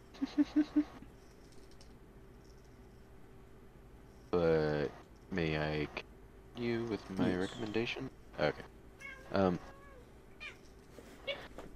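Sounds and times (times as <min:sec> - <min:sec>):
faint hum: 0:00.0 - 0:11.7
speech: 0:00.2 - 0:01.0, 0:05.4 - 0:08.7, 0:09.3 - 0:09.7
cat meowing: 0:09.0 - 0:10.6.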